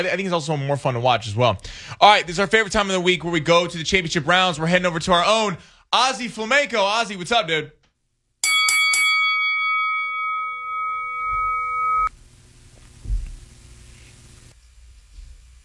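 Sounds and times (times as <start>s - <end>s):
speech: 0.0s - 7.8s
boxing ring bell clanging: 8.4s - 12.1s.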